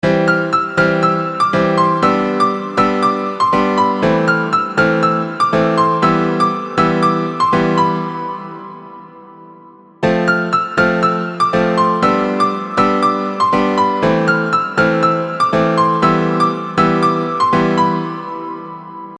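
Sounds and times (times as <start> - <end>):
chord progression in A minor: 0.0 - 19.1.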